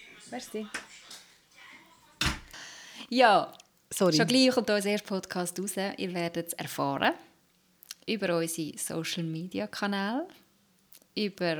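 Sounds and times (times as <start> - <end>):
faint noise: 0.0 - 11.5
speech: 0.3 - 0.9, 3.1 - 7.3, 8.0 - 10.4, 11.2 - 11.5
door shutting with a solid close thud: 2.2 - 2.5.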